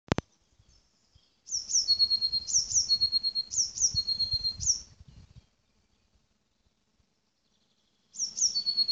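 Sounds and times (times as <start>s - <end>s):
Eurasian blue tit (Cyanistes caeruleus) giving high thin notes and a buzzy trill: 1.5s - 5.0s, 7.9s - 8.9s.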